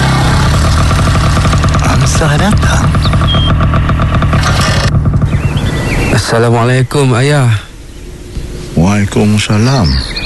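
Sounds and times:
motorcycle engine arriving and idling: 0:00.0 - 0:06.1
speech: 0:02.2 - 0:03.0, 0:06.3 - 0:07.7, 0:08.8 - 0:10.1.

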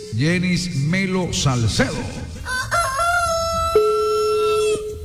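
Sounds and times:
speech: 0:00.2 - 0:02.2
rooster crowing: 0:02.5 - 0:04.9.

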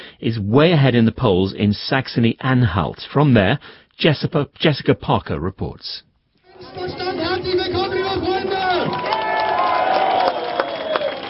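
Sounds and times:
speech: 0:00.2 - 0:07.6
large crowd cheering at a political rally: 0:06.4 - 0:11.2
scattered shouts from the crowd: 0:06.5 - 0:10.3.

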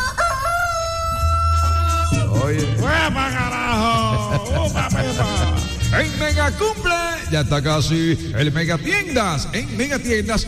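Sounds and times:
rooster crowing: 0:00.0 - 0:02.2
laughter: 0:00.0 - 0:06.0
speech: 0:04.7 - 0:10.4.

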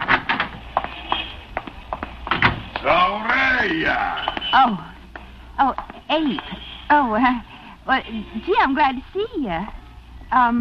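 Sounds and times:
sharp knocks and rattles: 0:00.0 - 0:01.3, 0:01.9 - 0:02.8
door opening and closing: 0:00.0 - 0:01.4, 0:02.3 - 0:02.7
speech: 0:02.8 - 0:04.9, 0:05.6 - 0:10.6.

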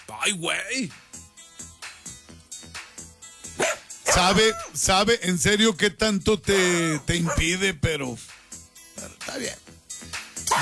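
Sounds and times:
speech: 0:00.1 - 0:01.2, 0:04.2 - 0:08.3, 0:09.3 - 0:09.6
dog barking: 0:03.6 - 0:04.7, 0:07.0 - 0:07.5.

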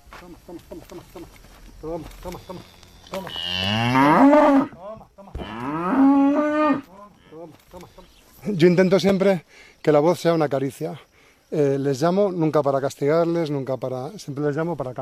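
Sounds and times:
speech: 0:00.2 - 0:05.4, 0:07.7 - 0:14.9
cows mooing on a farm in Carcaboso: 0:02.4 - 0:07.4.

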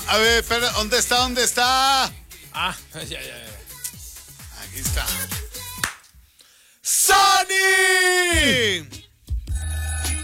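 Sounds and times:
speech: 0:00.1 - 0:03.6, 0:04.7 - 0:05.5, 0:06.9 - 0:09.0
telephone ringing with gliding electronic tone: 0:09.5 - 0:10.2.

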